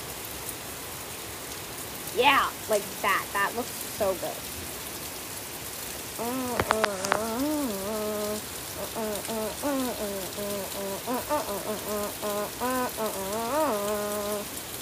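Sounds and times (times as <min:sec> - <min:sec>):
heavy rain pouring down outside: 0:00.0 - 0:14.8
speech: 0:02.2 - 0:04.6, 0:06.2 - 0:14.6
wavering hum-like vocal tones: 0:06.2 - 0:14.5.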